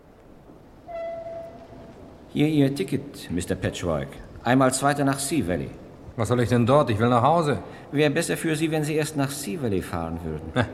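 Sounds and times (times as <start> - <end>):
railway train horn tone: 0.9 - 1.9
speech: 2.3 - 10.7.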